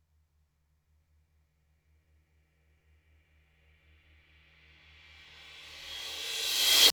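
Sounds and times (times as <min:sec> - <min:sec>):
reversed cymbal crash: 0:04.8 - 0:06.9.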